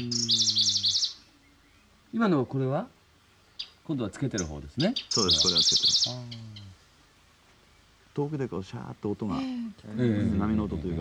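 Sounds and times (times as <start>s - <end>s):
birdsong recorded close without a parabolic reflector: 0.0s - 2.1s, 3.4s - 6.8s
speech: 2.1s - 3.0s, 3.9s - 6.8s, 8.2s - 11.0s.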